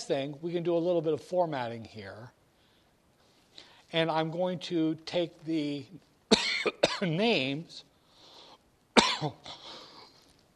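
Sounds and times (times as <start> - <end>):
speech: 0.0 - 2.4, 3.9 - 7.9, 9.2 - 9.7
person coughing: 6.3 - 7.1, 9.0 - 10.1
person clearing throat: 9.0 - 9.7.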